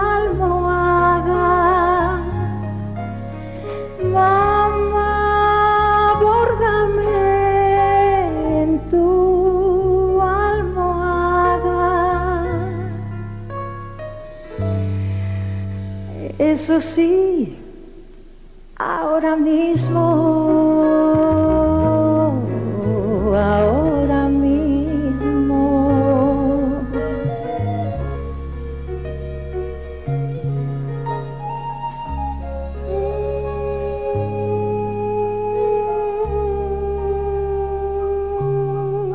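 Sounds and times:
woman singing a gentle melodic song: 0.0s - 2.5s, 4.0s - 13.0s, 16.1s - 17.8s, 18.8s - 27.6s, 32.9s - 39.1s
steady instrumental accompaniment with a low bass line: 0.0s - 39.1s
speech: 16.8s - 17.2s.

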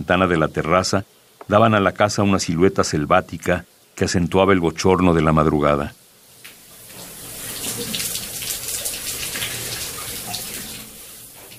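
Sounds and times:
speech: 0.1s - 6.0s
water running from a tap: 6.4s - 11.5s.

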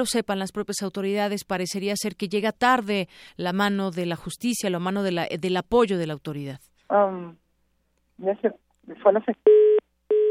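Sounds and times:
speech: 0.0s - 7.4s, 8.2s - 9.8s
telephone tone beeps from a dropped phone call: 9.4s - 10.2s.

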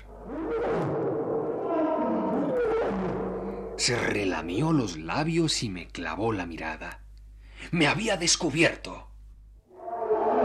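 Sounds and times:
lioness roaring in a group of lions: 0.0s - 4.1s, 9.7s - 10.4s
speech: 3.8s - 7.0s, 7.7s - 9.1s.

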